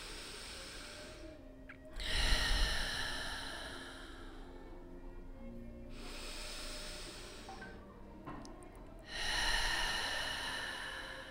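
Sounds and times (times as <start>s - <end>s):
deep breaths exhaled through the mouth during a guided relaxation exercise: 0.0s - 4.8s, 5.9s - 7.8s, 9.1s - 11.2s.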